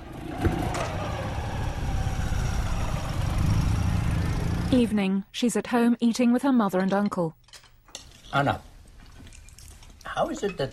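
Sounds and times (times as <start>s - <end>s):
motorbike driving off: 0.0s - 4.9s
speech: 4.7s - 7.4s, 8.3s - 8.7s, 10.2s - 10.7s.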